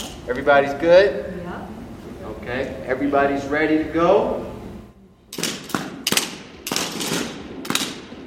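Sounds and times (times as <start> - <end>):
speech: 0.3 - 1.4, 2.4 - 4.5
simulated rifle fire from imitation AR-15s at a virtual firing range: 5.3 - 8.2.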